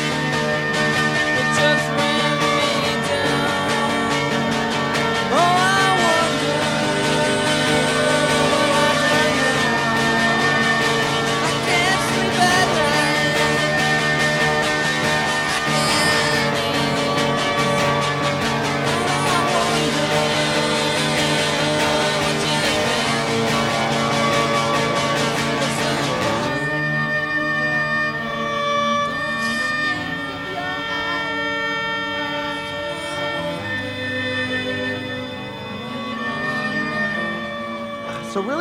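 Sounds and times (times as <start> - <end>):
sliding string melody over harmonic backing: 0.0 - 38.5.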